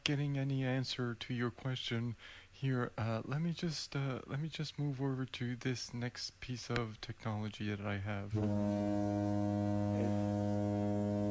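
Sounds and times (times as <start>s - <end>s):
speech: 0.0s - 11.2s
low steady foghorn blast: 8.3s - 11.2s.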